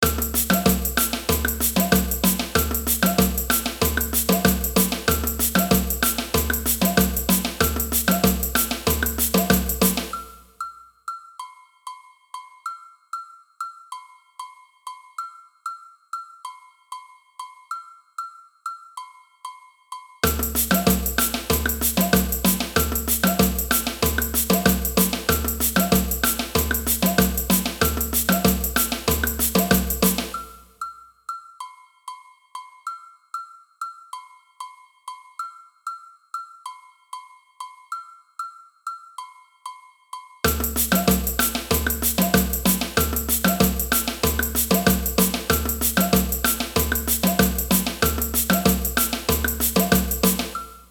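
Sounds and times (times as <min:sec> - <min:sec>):
agogo bells in a samba band: 0:00.0 - 0:10.3, 0:20.2 - 0:30.6, 0:40.5 - 0:50.8.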